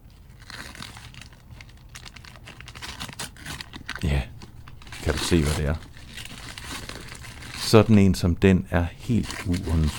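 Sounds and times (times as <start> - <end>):
star-printed wrapping paper crinkling and tearing as a gift is unwrapped: 0.0 - 9.9
speech: 5.1 - 5.9, 7.7 - 9.9.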